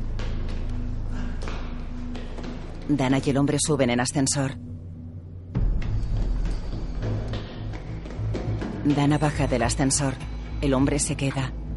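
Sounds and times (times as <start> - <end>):
footsteps running up a flight of stairs: 0.0 - 3.0, 5.6 - 10.1
speech: 2.9 - 4.7, 8.9 - 11.6.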